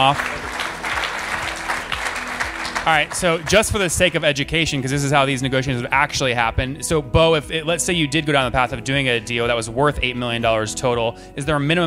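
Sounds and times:
speech: 0.0s - 0.6s, 2.8s - 11.8s
audience applause: 0.0s - 4.2s.

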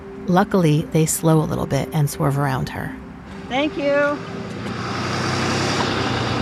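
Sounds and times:
speech: 0.3s - 4.5s
pickup truck driving past on road: 3.2s - 6.3s.

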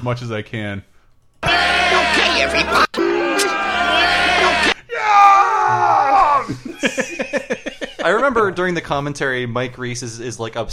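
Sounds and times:
speech: 0.0s - 3.6s, 6.5s - 10.7s
several people yelling and shouting over one another: 1.4s - 6.6s
short choppy whoops: 3.0s - 6.6s
laughter: 6.4s - 8.4s.

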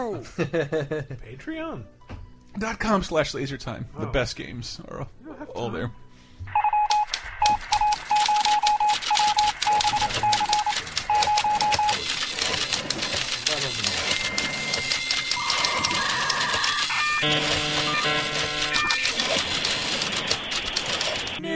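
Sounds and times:
speech: 0.2s - 2.0s, 2.5s - 6.5s
phone ringing with rapid short electronic beeps: 6.5s - 21.4s
melodic electronic ringtone: 6.5s - 12.1s, 13.7s - 19.7s.

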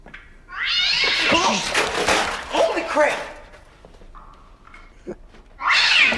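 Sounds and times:
cat yowling: 0.5s - 1.8s, 5.6s - 6.1s
speech: 3.0s - 3.3s.

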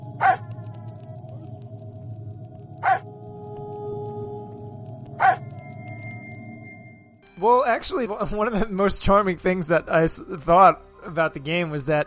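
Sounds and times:
steady low hum and droning tone: 0.0s - 7.2s
dog barking in a zombie video game: 0.2s - 0.4s, 2.8s - 3.0s, 5.2s - 5.4s
speech: 7.4s - 12.0s.

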